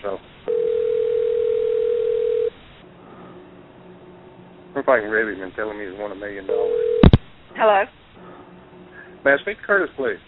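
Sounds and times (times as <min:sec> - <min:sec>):
telephone dial tone: 0:00.5 - 0:02.5, 0:06.5 - 0:07.2
speech: 0:04.9 - 0:06.8, 0:07.6 - 0:08.0, 0:09.2 - 0:10.2.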